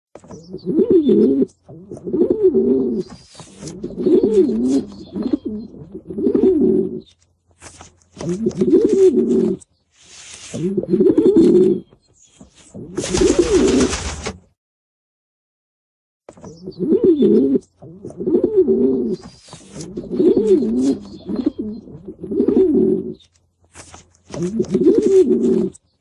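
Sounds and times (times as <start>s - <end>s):
pigeons cooing in nature: 0.3s - 7.1s, 8.2s - 9.6s, 10.5s - 11.9s, 12.8s - 14.1s, 16.6s - 23.2s, 24.3s - 25.8s.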